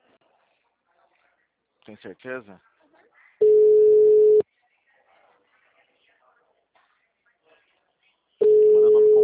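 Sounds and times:
speech: 1.8 - 2.7
telephone call tone beep: 3.4 - 4.4, 8.4 - 9.2.

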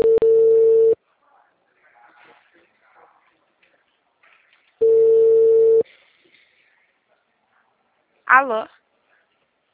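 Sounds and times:
phone call ringback tone ringing unanswered: 0.0 - 1.0, 4.8 - 5.8
speech: 8.4 - 8.8.

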